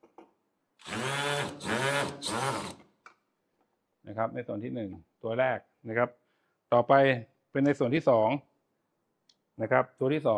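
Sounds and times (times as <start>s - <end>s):
power drill with a Phillips bit driving self-drilling screws: 0.8s - 2.9s
speech: 4.2s - 8.5s, 9.6s - 10.3s.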